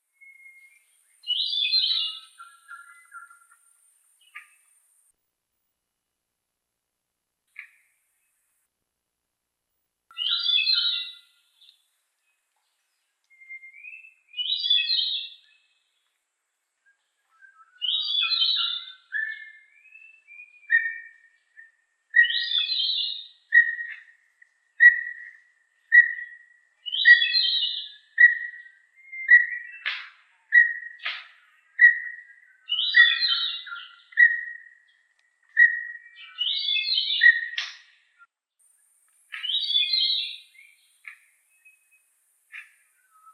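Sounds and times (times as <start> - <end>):
cucak rumbai tungging bulbul singing: 0.1 - 5.1, 10.1 - 11.9, 16.8 - 43.3.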